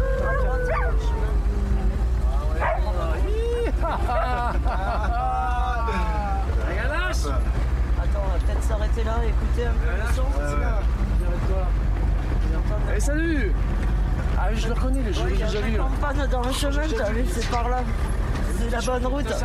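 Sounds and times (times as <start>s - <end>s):
dog barking and yipping in a video game: 0.0s - 1.3s, 2.6s - 3.0s
steady low rumble: 0.0s - 19.4s
laughter: 2.6s - 6.8s
speech: 14.9s - 19.4s.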